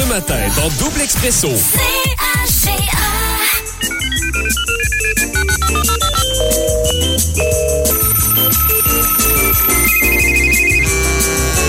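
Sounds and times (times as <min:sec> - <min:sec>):
speech: 0:00.2 - 0:03.2
melodic phone ringtone during an outgoing call: 0:03.6 - 0:11.6.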